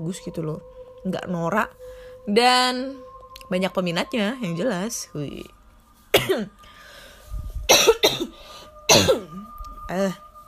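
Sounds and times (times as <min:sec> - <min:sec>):
speech: 0:00.0 - 0:05.6, 0:06.2 - 0:06.7, 0:08.0 - 0:09.3, 0:09.9 - 0:10.2
faint steady hum: 0:00.0 - 0:10.4
person coughing: 0:06.1 - 0:06.6, 0:07.7 - 0:09.4.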